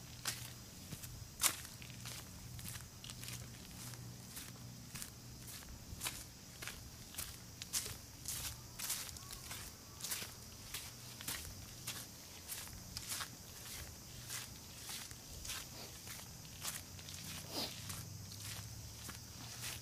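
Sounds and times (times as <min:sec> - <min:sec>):
faint insect buzz: 0:00.0 - 0:19.8
footsteps crunching along a summer mountain trail: 0:00.0 - 0:19.8.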